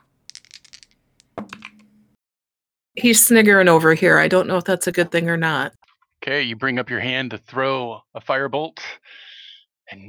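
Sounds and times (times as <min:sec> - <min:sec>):
percentile dice rolled across a table during a tabletop role-playing game: 0:00.3 - 0:01.9
speech: 0:03.0 - 0:09.2, 0:09.9 - 0:10.0.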